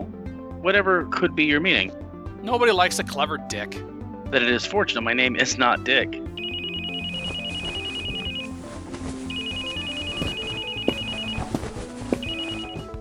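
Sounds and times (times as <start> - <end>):
speech: 0.6 - 6.4
phone ringtone of rapid high beeps: 6.4 - 12.9.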